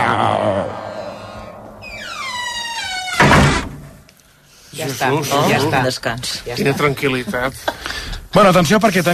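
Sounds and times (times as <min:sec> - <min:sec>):
door hinge squeaking: 0:01.8 - 0:03.7
door swinging shut with a solid thump: 0:02.4 - 0:03.9
speech: 0:04.9 - 0:09.1.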